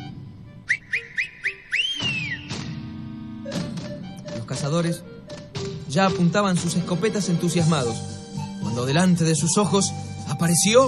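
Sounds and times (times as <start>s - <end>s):
short rising whistle chirps: 0.6s - 2.6s
speech: 4.5s - 5.1s, 5.9s - 8.1s, 8.8s - 10.8s.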